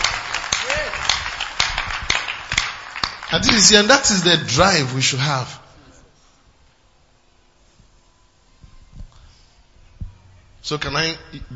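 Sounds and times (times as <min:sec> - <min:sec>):
audience clapping rhythmically during a sermon: 0:00.0 - 0:05.6
speech: 0:03.3 - 0:05.6, 0:10.7 - 0:11.5.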